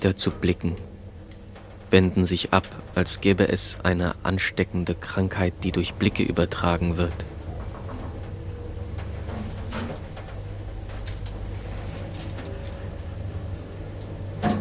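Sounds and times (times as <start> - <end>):
speech: 0.0 - 0.9, 1.9 - 7.4
steady low mechanical hum: 0.0 - 14.5
soft clunks and rattles: 0.3 - 14.5.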